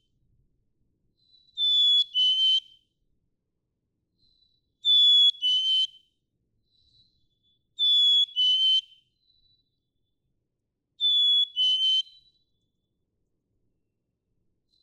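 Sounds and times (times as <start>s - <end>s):
black-capped chickadee whistled song: 1.3s - 2.9s, 4.2s - 6.1s, 6.8s - 9.5s, 11.0s - 12.5s.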